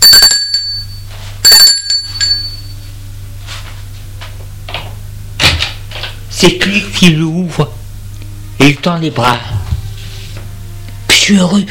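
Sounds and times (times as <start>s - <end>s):
doorbell chimes rung by a visitor: 0.0s - 2.9s
low steady hum: 0.0s - 11.6s
speech: 6.4s - 7.8s, 8.8s - 9.6s, 11.2s - 11.6s.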